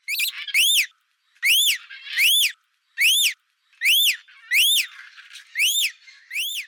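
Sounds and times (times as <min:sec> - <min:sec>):
rainbow lorikeet Trichoglossus haematodus calling: 0:00.0 - 0:06.6.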